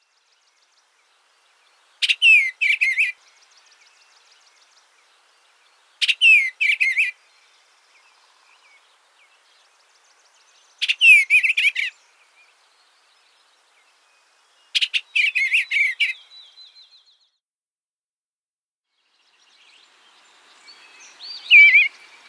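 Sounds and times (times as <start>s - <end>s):
Eastern Bluebird singing: 0.1s - 17.2s.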